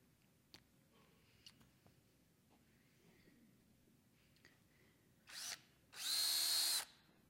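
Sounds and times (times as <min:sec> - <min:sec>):
battery-powered drill whirring: 0:05.3 - 0:07.0.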